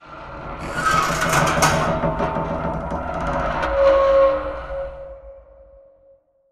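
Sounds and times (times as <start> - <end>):
metal creaking under stress: 0.6 - 4.1.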